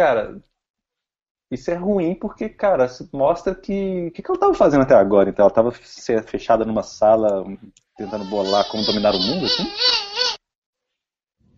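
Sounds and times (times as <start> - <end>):
speech: 0.0 - 0.5, 1.5 - 10.0
baby babbling: 8.0 - 10.4.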